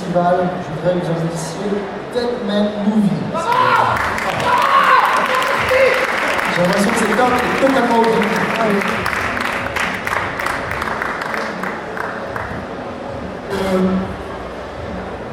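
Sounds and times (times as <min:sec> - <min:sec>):
speech: 0:00.1 - 0:04.4, 0:06.6 - 0:09.1, 0:13.7 - 0:14.0
audience clapping: 0:03.5 - 0:12.7.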